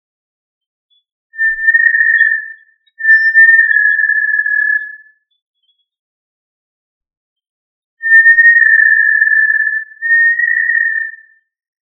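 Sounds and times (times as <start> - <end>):
tinamou producing sustained pure whistles: 1.4 - 5.1, 8.0 - 11.4.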